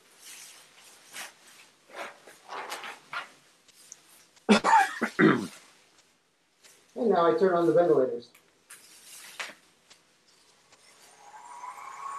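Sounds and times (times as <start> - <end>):
stiff fabric of a protective suit rustling: 0.0 - 7.9, 8.6 - 10.6
speech: 7.0 - 8.4.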